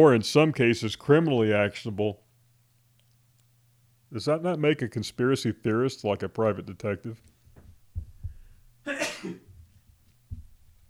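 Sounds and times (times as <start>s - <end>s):
speech: 0.0s - 2.2s, 4.1s - 7.3s, 9.2s - 9.4s
room noise: 0.0s - 10.8s
faint low thumps: 7.4s - 10.8s
person sneezing: 8.9s - 9.5s.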